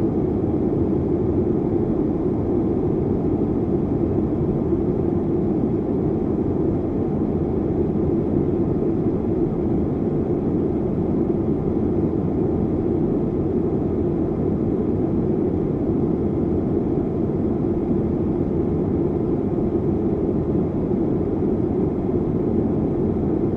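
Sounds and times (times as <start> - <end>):
airplane cabin drone: 0.0 - 23.5.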